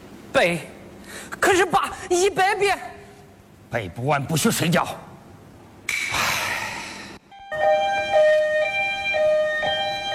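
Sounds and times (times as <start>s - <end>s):
speech: 0.4s - 3.0s, 3.7s - 5.1s
loud two-tone ambulance siren: 7.3s - 10.1s.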